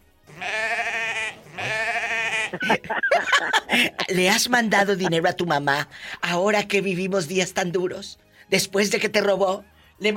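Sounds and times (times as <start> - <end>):
sheep bleating: 0.3 - 2.8
laughter: 1.6 - 4.3
speech: 2.5 - 10.1.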